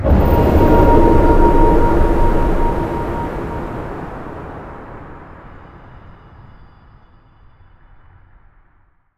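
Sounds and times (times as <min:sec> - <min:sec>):
end portal sound effect: 0:00.0 - 0:06.3.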